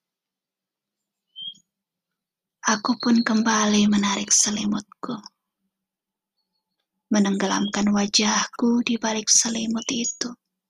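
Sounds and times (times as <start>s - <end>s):
bird chirp outside in the morning: 1.0s - 1.8s, 2.6s - 4.9s, 6.3s - 10.4s
speech: 2.7s - 5.3s, 7.1s - 10.4s.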